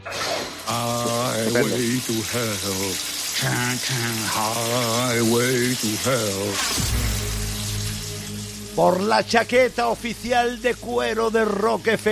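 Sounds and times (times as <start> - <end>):
shower running: 0.1 - 12.1
person singing a lilting melody: 0.6 - 6.8
speech: 1.4 - 7.4, 8.8 - 12.1.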